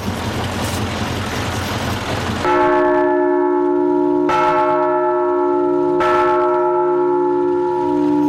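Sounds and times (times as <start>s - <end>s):
noisy rustling ambience: 0.0s - 8.2s
large church bells ringing: 2.4s - 8.2s.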